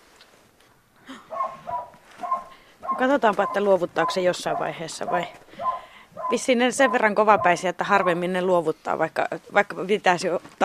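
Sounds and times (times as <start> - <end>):
hunting dog barking: 1.3 - 8.2
speech: 3.0 - 5.7, 6.3 - 10.6.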